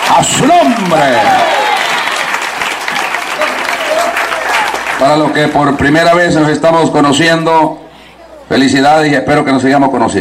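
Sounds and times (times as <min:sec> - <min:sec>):
audience applauding: 0:00.0 - 0:06.3
speech: 0:00.2 - 0:01.6, 0:05.0 - 0:07.8, 0:08.5 - 0:10.1.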